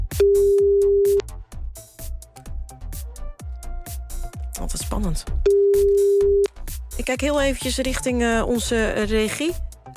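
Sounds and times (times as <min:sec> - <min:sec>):
ringing tone of an outgoing telephone call: 0:00.2 - 0:01.2, 0:05.5 - 0:06.5
speech: 0:05.0 - 0:05.5, 0:07.1 - 0:09.9.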